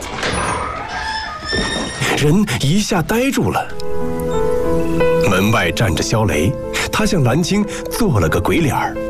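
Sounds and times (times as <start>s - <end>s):
door pulled open with a sliding scraping rumble: 0.0s - 2.5s
speech: 2.2s - 4.2s, 4.9s - 9.0s.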